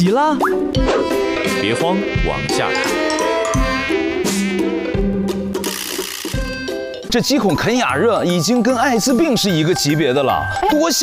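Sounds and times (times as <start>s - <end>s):
speech: 0.0s - 4.1s, 7.1s - 11.0s
mosquito buzzing: 0.8s - 6.9s.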